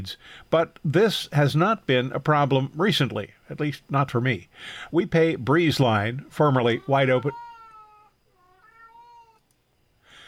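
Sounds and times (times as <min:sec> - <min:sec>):
speech: 0:00.0 - 0:07.4
cat meowing: 0:06.7 - 0:09.4.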